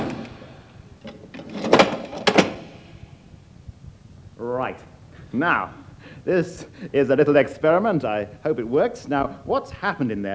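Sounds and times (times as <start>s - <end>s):
sharp metallic clack of a cell door being locked: 0.0s - 2.9s
heavy prison cell door sliding and shutting with a solid clunk: 0.0s - 3.0s
speech: 4.6s - 10.3s.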